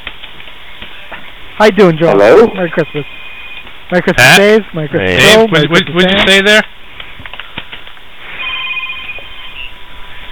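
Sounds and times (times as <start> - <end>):
steady hiss on a phone line: 0.0 - 10.3
speech: 1.6 - 3.2, 3.9 - 6.8
telephone ringing over a band-limited phone line during a conference call: 8.4 - 9.3.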